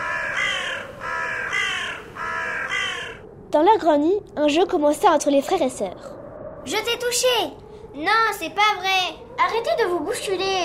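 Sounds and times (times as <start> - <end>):
crow cawing harshly: 0.0 - 3.3
speech: 3.5 - 10.6.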